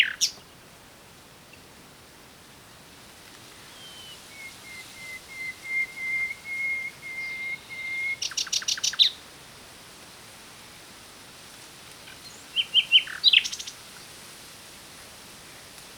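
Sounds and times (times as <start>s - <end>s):
common nightingale Luscinia megarhynchos singing: 0.0s - 0.5s, 3.6s - 9.2s, 12.0s - 13.8s.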